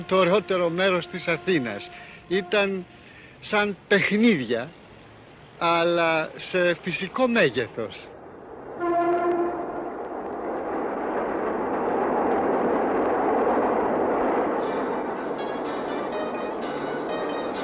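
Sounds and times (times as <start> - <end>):
train horn: 0.0 - 3.0, 8.8 - 9.8
speech: 0.0 - 4.8, 5.6 - 8.1
train passing close by with steady rumble: 0.0 - 6.6, 7.6 - 17.6.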